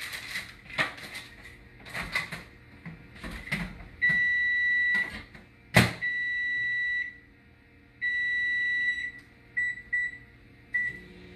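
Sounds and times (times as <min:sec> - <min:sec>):
kitchen clicks and clatter: 0:00.0 - 0:02.5
oven broiler timer beeping: 0:04.0 - 0:05.2, 0:06.0 - 0:07.3, 0:08.0 - 0:11.3.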